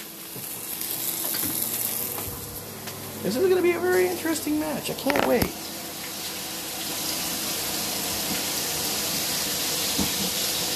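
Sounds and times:
meat frying in a pan during a cooking match: 0.0 - 2.3, 5.6 - 10.7
speech: 3.2 - 5.7.

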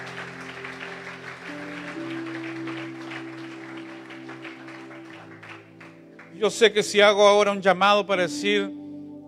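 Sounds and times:
church audience applauding after a prayer: 0.0 - 6.4
sustained organ-like keyboard chords: 0.0 - 9.2
speech: 6.4 - 8.8.

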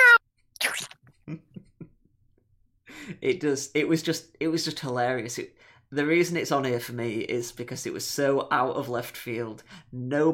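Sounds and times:
voice imitating a cat meowing: 0.0 - 0.9
speech: 1.3 - 1.5, 3.2 - 10.3.

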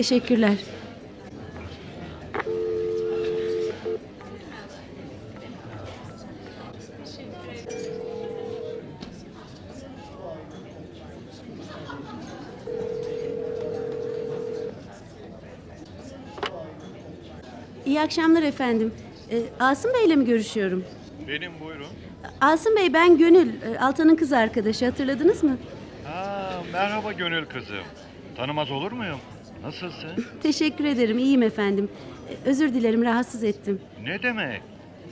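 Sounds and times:
speech: 0.0 - 0.8, 18.0 - 34.7
indistinct chatter in a bar: 0.0 - 35.1
telephone ringing tone from a call placed in a bar: 2.5 - 4.0, 7.7 - 8.9, 12.7 - 14.8
laughter: 11.6 - 12.8.

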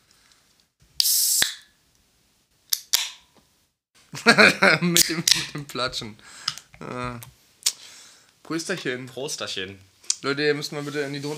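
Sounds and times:
beer bottle opening pop: 1.0 - 1.7, 2.7 - 3.3
fizzing hiss of gas escaping from a beer bottle: 1.0 - 1.7
laughter: 4.2 - 5.7
speech: 4.2 - 7.4, 8.5 - 11.3.

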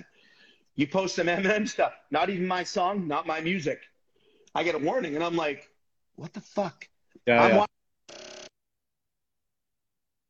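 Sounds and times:
speech: 0.8 - 3.9, 4.5 - 8.2
telephone ringing with an incoming call: 7.5 - 8.5.

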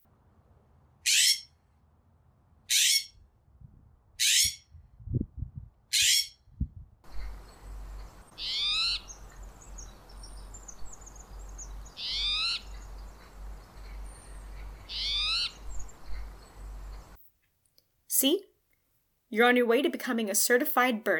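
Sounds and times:
steady low rumble: 0.0 - 17.2
spotted towhee calling: 1.0 - 1.6, 2.7 - 3.2, 4.2 - 4.7, 5.9 - 6.4, 7.1 - 17.2
California scrub jay calling: 1.1 - 1.5, 2.7 - 3.1, 4.2 - 4.6, 8.4 - 9.2, 12.0 - 12.7, 14.9 - 15.6
faint low thumps: 3.5 - 4.0, 4.7 - 5.8, 6.5 - 7.5
faint birdsong: 7.0 - 17.2
speech: 18.2 - 18.5, 19.3 - 21.1.

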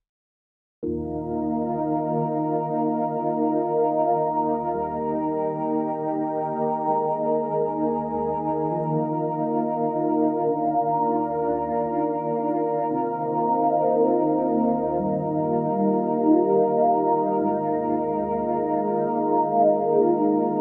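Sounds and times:
sustained harmonic synth chord through a notch filter swept by a slow LFO: 0.8 - 20.5.

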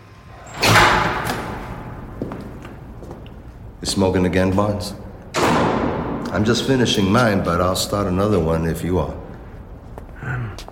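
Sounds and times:
door swinging shut with heavy thud: 0.4 - 2.4, 5.3 - 6.6
speech: 3.8 - 5.0, 6.4 - 9.2.

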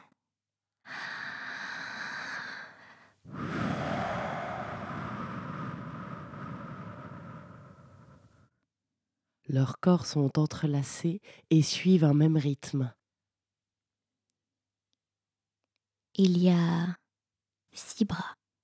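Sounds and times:
heavy raspy breathing: 0.9 - 8.5
speech: 9.5 - 13.0, 16.2 - 17.0, 17.7 - 18.4.

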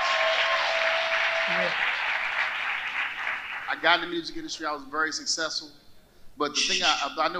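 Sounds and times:
audience applauding: 0.0 - 4.0
speech: 1.5 - 1.9, 3.7 - 5.8, 6.4 - 7.3.

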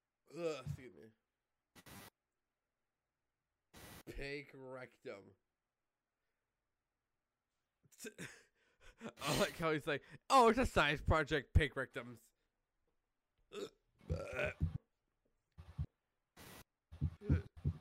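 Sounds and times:
speech: 0.3 - 2.1, 4.1 - 5.5, 8.0 - 8.4, 9.0 - 12.3, 13.5 - 14.6
person hiccuping: 13.5 - 14.8, 17.2 - 17.6.

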